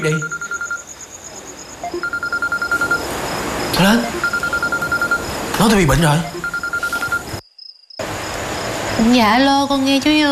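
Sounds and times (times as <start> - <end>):
speech: 0.0 - 0.4, 3.8 - 4.2, 5.6 - 6.3, 9.0 - 10.3
faint beeps: 0.0 - 0.9, 1.8 - 3.1, 3.7 - 7.4
telephone ringing with an incoming call: 0.0 - 0.9, 1.8 - 3.1, 3.8 - 7.4.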